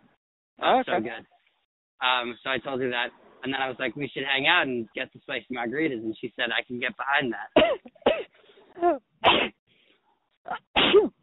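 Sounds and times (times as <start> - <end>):
speech: 0.6 - 1.4, 2.0 - 8.0, 8.8 - 9.5, 10.5 - 11.2
small stifled sneezes: 9.2 - 9.6, 10.5 - 11.2.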